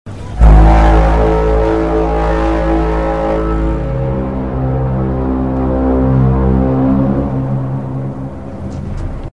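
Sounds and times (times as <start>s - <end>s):
car horn: 0.3s - 8.8s.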